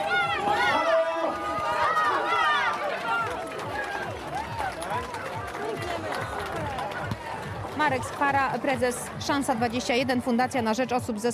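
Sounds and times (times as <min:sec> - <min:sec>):
many runners' footsteps pounding at the start of a charity race: 0:00.0 - 0:10.0
speech: 0:07.9 - 0:11.3.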